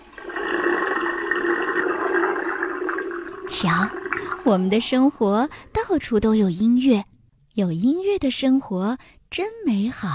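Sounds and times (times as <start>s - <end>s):
toilet flushing: 0.0s - 5.5s
speech: 3.5s - 10.1s.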